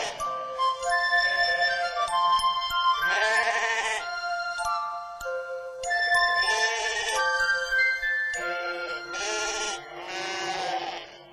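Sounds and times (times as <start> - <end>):
sheep bleating: 0.0 - 0.2, 3.1 - 4.0, 6.4 - 7.2, 8.4 - 11.3
musical accompaniment of held tones: 0.0 - 11.3.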